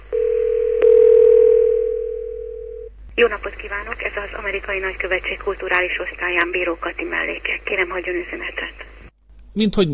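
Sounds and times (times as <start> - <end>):
single-pitch telephone line tone while a call is transferred: 0.0 - 2.9
speech: 3.2 - 8.8, 9.6 - 9.9.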